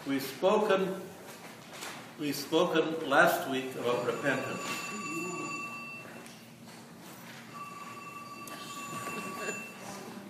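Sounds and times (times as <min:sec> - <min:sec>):
speech: 0:00.0 - 0:01.1, 0:02.2 - 0:05.3
mobile phone ringing with electronic tone: 0:03.7 - 0:06.3, 0:07.4 - 0:10.0.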